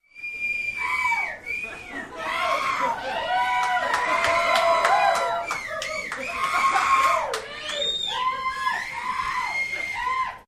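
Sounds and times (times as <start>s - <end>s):
whistling: 0.0s - 2.1s, 5.2s - 6.5s, 7.7s - 10.0s
crowd howling: 0.3s - 10.4s
laughter: 1.4s - 9.0s
applause: 3.1s - 8.3s.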